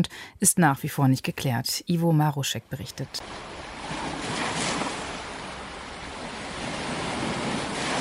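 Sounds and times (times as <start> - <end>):
speech: 0.0 - 4.2
ocean waves breaking on a beach on the northeast coast of Brazil: 3.1 - 8.0.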